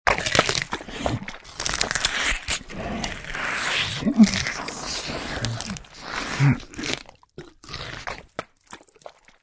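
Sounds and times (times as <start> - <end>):
monster eating flesh: 0.1 - 9.4.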